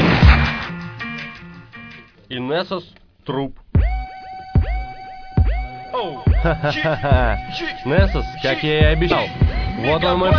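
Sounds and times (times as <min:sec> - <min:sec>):
single sharp booming gunshot: 0:00.0 - 0:00.8
speech: 0:02.3 - 0:03.6, 0:06.0 - 0:10.3
laughter: 0:06.0 - 0:08.4.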